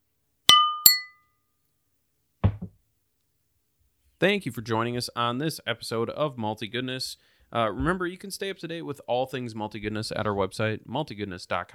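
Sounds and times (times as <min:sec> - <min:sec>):
beer glasses clinking in a toast: 0:00.5 - 0:01.2
speech: 0:04.2 - 0:11.7.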